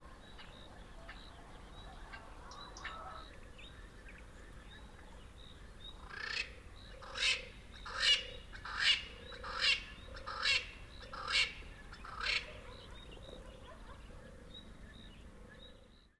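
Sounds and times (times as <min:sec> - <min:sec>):
Double-spurred Francolin calling: 0:00.0 - 0:16.1.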